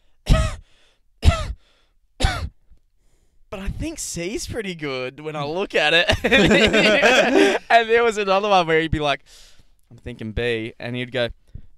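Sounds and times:
person imitating forced throaty coughs: 0.3 - 0.6, 1.2 - 1.6, 2.2 - 2.6
speech: 3.6 - 11.4
laughter: 6.1 - 7.7.

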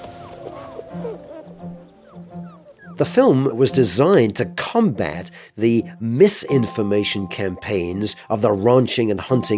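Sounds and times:
young wolf pups yipping and whining: 0.0 - 3.2
speech: 3.0 - 9.5.

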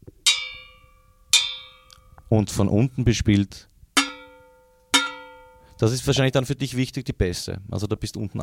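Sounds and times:
old metal bedpan struck on its side: 0.2 - 2.2, 4.0 - 5.8
speech: 2.3 - 3.7, 5.8 - 8.4.

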